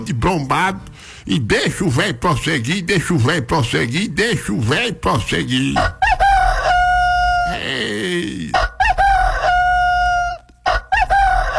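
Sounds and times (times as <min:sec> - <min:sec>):
speech: 0:00.0 - 0:06.0, 0:07.7 - 0:08.6
rooster crowing: 0:05.8 - 0:07.7, 0:08.6 - 0:11.5
person exclaiming: 0:07.4 - 0:08.6.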